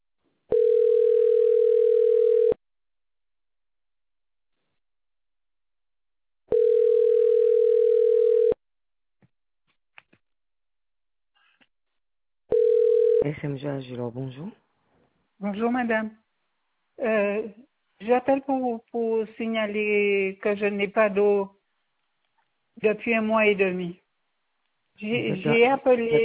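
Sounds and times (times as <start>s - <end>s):
telephone ringback tone on an outgoing call to a water company: 0.5s - 2.6s, 6.5s - 8.6s, 12.5s - 13.2s
speech: 13.5s - 14.6s, 15.4s - 16.2s, 17.0s - 21.6s, 22.8s - 24.0s, 25.0s - 26.2s.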